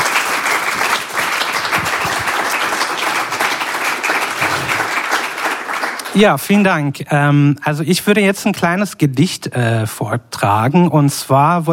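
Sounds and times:
audience applause for a reader at a reading stage: 0.0 - 6.4
speech: 6.2 - 11.7.

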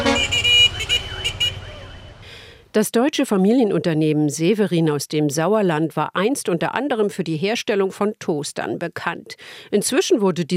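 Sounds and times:
matatu minibus horn with warbling melodic pattern: 0.0 - 2.3
low traffic rumble: 0.0 - 2.7
speech: 2.8 - 10.5.

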